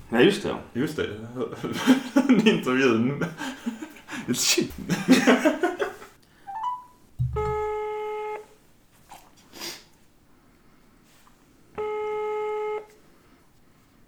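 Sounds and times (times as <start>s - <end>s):
speech: 0.1s - 3.6s, 4.2s - 5.8s
people laughing: 1.4s - 6.2s
electronic ringback tones of an outgoing phone call: 6.5s - 8.4s, 11.8s - 12.9s.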